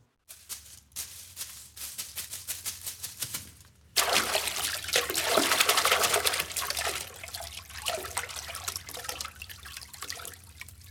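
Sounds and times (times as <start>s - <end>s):
water splashing and churning as swans dive into a pond: 4.0s - 10.8s.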